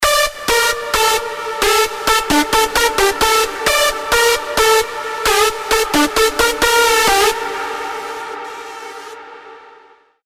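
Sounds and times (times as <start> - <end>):
big room synth lead in D, wet: 0.0 - 10.2.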